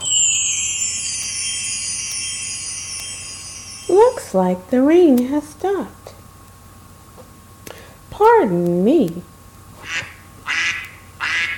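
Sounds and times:
speech: 4.3s - 6.0s, 8.2s - 9.3s
pet duck quacking after rain: 9.8s - 11.5s.

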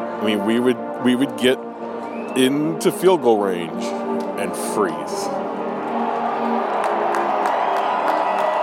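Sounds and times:
speech: 0.2s - 1.7s, 2.3s - 5.3s
football fans cheering in a large stadium: 5.0s - 8.6s
scattered whoops from stadium fans: 5.6s - 8.6s
faint claps from stadium fans: 6.8s - 8.6s.

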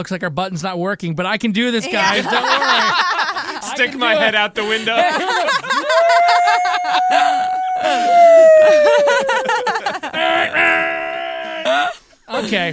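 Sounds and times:
speech: 0.0s - 11.0s, 11.6s - 12.7s
people laughing: 1.8s - 12.7s
person imitating a fire truck siren with their voice: 5.8s - 12.0s.

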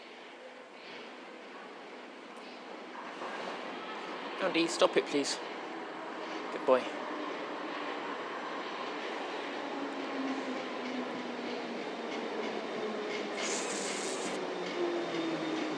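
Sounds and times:
District line train rolling along tracks: 3.1s - 15.7s
speech: 4.4s - 5.5s, 6.7s - 7.0s
brief high hiss: 13.4s - 14.4s.

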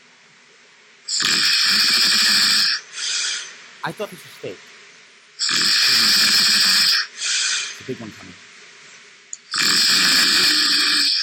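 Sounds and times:
pet snoring: 1.1s - 3.5s, 5.4s - 7.8s, 9.5s - 11.2s
speech: 3.8s - 4.7s, 7.9s - 8.5s.

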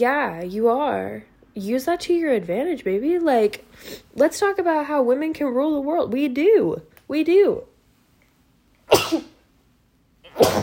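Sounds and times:
speech: 0.0s - 7.7s, 10.4s - 10.6s
person sneezing: 8.9s - 9.4s, 10.2s - 10.6s.

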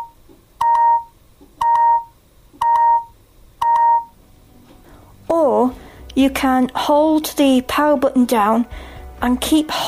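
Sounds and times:
voice-controlled device beeping while powering off: 0.0s - 4.2s
speech: 6.2s - 9.8s.

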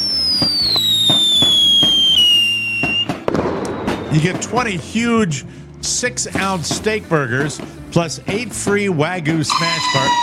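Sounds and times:
long high whistle gliding downward: 0.0s - 4.4s, 9.5s - 10.2s
fireworks crackling and banging: 0.0s - 7.6s
speech: 4.1s - 10.2s.

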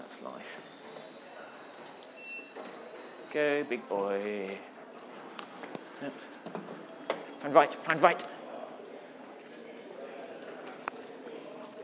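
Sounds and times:
high sustained squeal of train wheels: 0.5s - 3.9s
speech: 2.6s - 4.7s, 6.0s - 6.7s, 7.4s - 8.3s.

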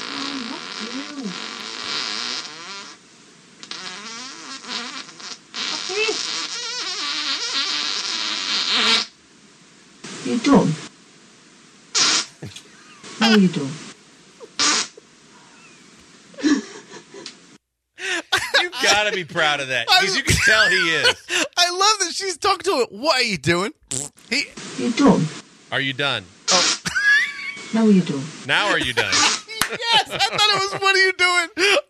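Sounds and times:
long fart: 0.0s - 3.0s, 3.6s - 9.1s, 12.0s - 12.6s, 14.5s - 15.0s, 23.8s - 24.6s, 26.5s - 27.0s
speech: 13.3s - 13.8s, 19.0s - 26.4s, 27.7s - 31.8s
laughter: 16.4s - 17.3s, 18.0s - 23.6s, 26.9s - 27.8s, 28.5s - 31.8s.

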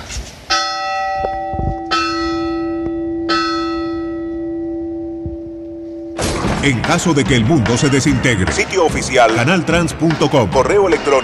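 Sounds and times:
bell ringing: 0.5s - 6.4s
speech: 6.6s - 11.2s.

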